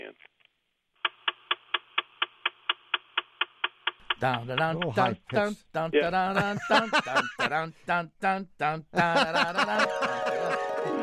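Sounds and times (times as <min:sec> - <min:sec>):
rapid ticking of car dashboard vacuum motors moving ventilation doors: 0:01.0 - 0:05.5
speech: 0:04.2 - 0:11.0
laughter: 0:06.1 - 0:07.7, 0:09.0 - 0:11.0.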